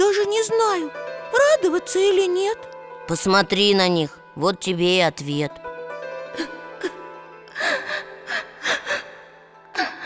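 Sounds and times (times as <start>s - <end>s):
speech: 0.5s - 5.6s, 6.4s - 6.9s
woman sobbing with gasping breaths and whimpering wails: 6.3s - 10.0s.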